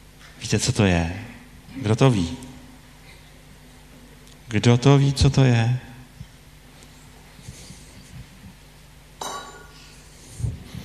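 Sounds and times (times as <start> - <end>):
speech: 0.4 - 2.5, 4.5 - 5.9
glass wine bottle clinking: 9.2 - 9.7.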